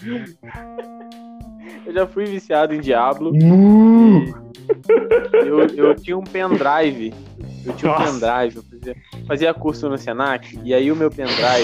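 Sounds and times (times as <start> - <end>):
laughter: 0.0 - 1.1, 4.6 - 7.1, 7.7 - 8.4
speech: 0.0 - 11.6
cow mooing: 3.3 - 4.4
short faint grunting sounds: 3.3 - 4.4.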